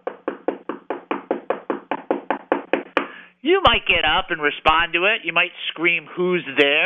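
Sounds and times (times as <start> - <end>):
knocking on a front door: 0.0 - 3.1
speech: 3.4 - 6.8.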